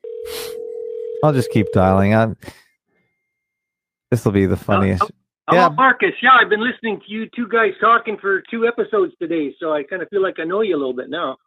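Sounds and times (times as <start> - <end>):
telephone dial tone while a call is being redialed: 0.0 - 1.8
speech: 1.2 - 2.6, 4.1 - 11.4.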